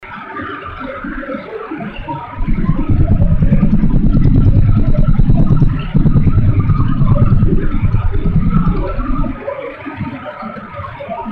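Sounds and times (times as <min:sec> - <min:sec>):
low-frequency surprise stream after tuning: 0:02.4 - 0:09.4.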